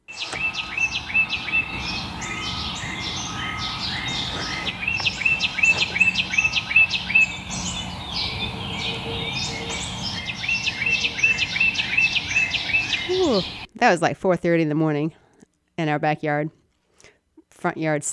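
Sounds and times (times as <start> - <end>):
birdsong in a yard before dawn: 0.0 - 13.7
speech: 13.8 - 15.2, 15.8 - 16.6, 17.6 - 18.1.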